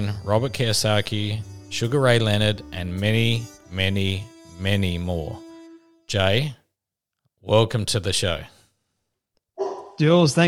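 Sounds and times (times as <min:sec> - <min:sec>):
speech: 0:00.0 - 0:05.4, 0:06.1 - 0:06.6, 0:07.4 - 0:08.6, 0:10.0 - 0:10.4
single sharp dog bark in the background: 0:09.6 - 0:10.0.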